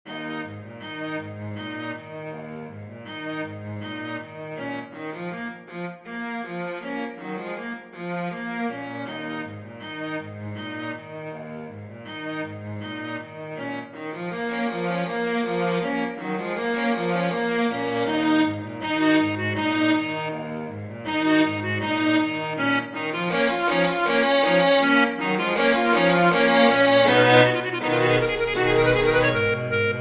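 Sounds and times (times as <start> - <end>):
quintet for clarinet and strings: 0.1 - 29.9.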